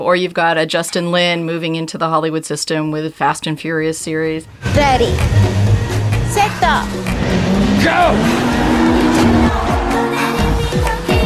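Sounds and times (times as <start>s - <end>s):
speech: 0.0s - 5.6s, 6.3s - 9.0s
light race car engines on slick tires accelerating and drifting through turns: 4.5s - 10.8s.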